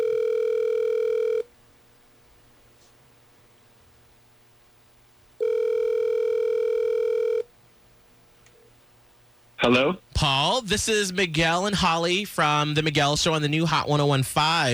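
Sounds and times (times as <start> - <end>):
telephone ringing in electronic bursts: 0.0 - 1.4, 5.4 - 7.4
speech: 9.7 - 14.7.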